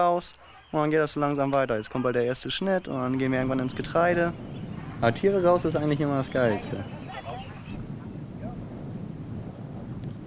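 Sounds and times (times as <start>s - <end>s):
speech: 0.0s - 7.1s
goose honks outdoors: 0.0s - 7.8s
steady blustery wind outdoors: 0.0s - 10.2s.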